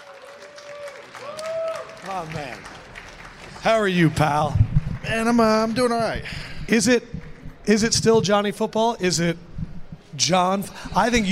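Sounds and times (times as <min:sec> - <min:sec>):
live audience applause for a guest being introduced: 0:00.0 - 0:06.2
speech: 0:02.0 - 0:02.8, 0:03.6 - 0:07.1, 0:07.7 - 0:09.5, 0:10.2 - 0:11.3.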